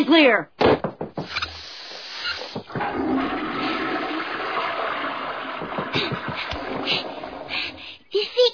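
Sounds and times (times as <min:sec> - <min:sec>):
speech: 0:00.0 - 0:00.6
toilet flushing: 0:01.9 - 0:08.0.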